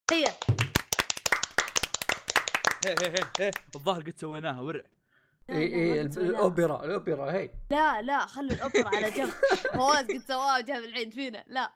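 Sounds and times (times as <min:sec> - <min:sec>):
speech: 0:00.1 - 0:00.6, 0:02.8 - 0:11.7
few people clapping hands: 0:00.1 - 0:03.9
laughter: 0:08.5 - 0:10.2.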